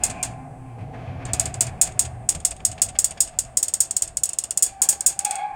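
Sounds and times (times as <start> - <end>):
soft mechanical clicks of a claw: 0.0 - 0.4, 1.3 - 5.4.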